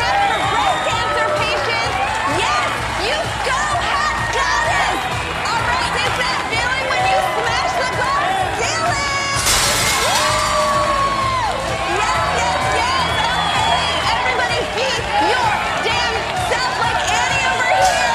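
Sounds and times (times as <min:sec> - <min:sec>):
loud continuous crowd cheering and shouting: 0:00.0 - 0:18.1
glass smashing: 0:09.4 - 0:11.2.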